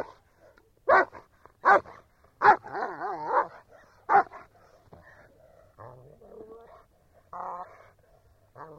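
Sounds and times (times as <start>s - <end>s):
German Shepherd dog barking: 0.8s - 4.5s.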